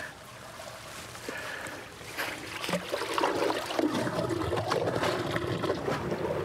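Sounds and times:
pond water rushing and gurgling through a pipe: 0.0 - 6.4.

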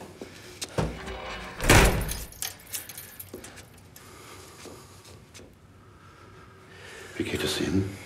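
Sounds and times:
door pushed shut with a solid thud: 0.8 - 2.3
keys jangling: 1.1 - 3.9
speech: 7.2 - 8.0.

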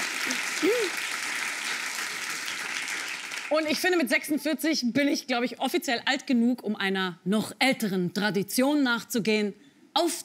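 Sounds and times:
audience applause: 0.0 - 3.8
speech: 0.6 - 1.1, 3.5 - 10.2.

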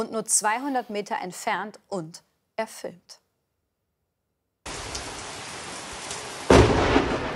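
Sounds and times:
speech: 0.0 - 3.2
heavy thunder crash: 4.7 - 7.3
lightning strike cracking into a house in Sundern Germany: 4.7 - 7.3
steady rain: 4.7 - 7.3.

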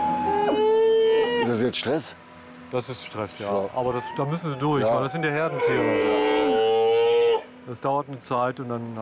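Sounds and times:
young camels calling: 0.1 - 1.5, 3.8 - 7.5
speech: 1.8 - 6.3, 7.7 - 8.9.

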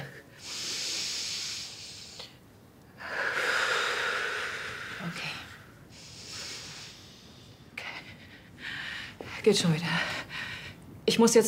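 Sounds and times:
breathing in through the nose: 0.4 - 2.4, 3.0 - 7.6
speech: 9.4 - 10.1, 11.2 - 11.4.

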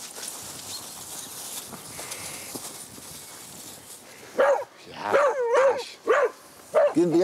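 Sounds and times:
steady outdoor rustle: 0.0 - 7.2
dog barking and yelping while being played with: 4.4 - 7.1
speech: 7.0 - 7.2.

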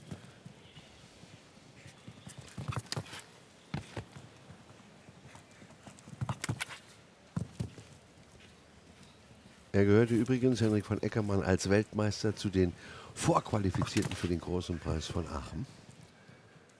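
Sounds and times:
horse hooves clip-clopping: 0.0 - 10.3
speech: 9.8 - 15.8.

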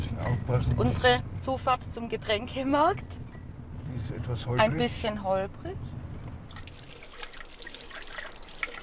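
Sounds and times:
speech: 0.5 - 3.2, 3.9 - 6.0
water trickling from a forest spring: 6.5 - 8.8.

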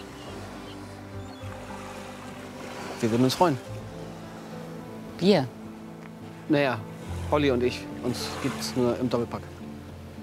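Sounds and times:
water lapping softly against a boat: 0.0 - 4.6, 6.3 - 9.6
speech: 3.0 - 3.8, 5.2 - 5.6, 6.5 - 9.6.

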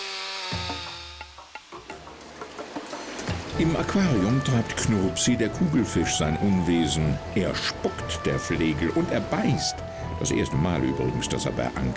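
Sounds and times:
chainsaw cutting wood: 0.0 - 1.9
speech: 3.6 - 11.9.

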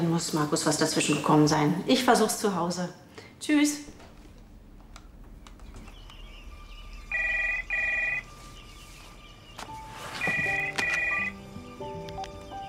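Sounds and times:
faint tones: 0.0 - 12.6
speech: 0.2 - 3.9
home telephone ringing with short electronic trills: 7.1 - 8.3, 10.2 - 11.4.

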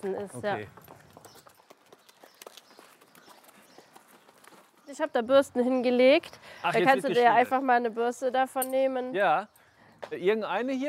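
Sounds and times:
speech: 0.0 - 0.9, 4.9 - 10.8
hooves of a horse being led at a walk: 0.0 - 5.2.

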